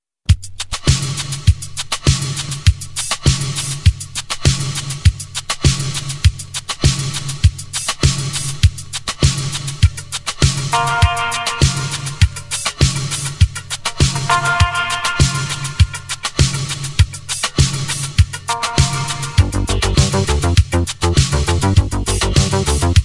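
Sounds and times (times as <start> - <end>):
percussion: 0.3 - 23.0.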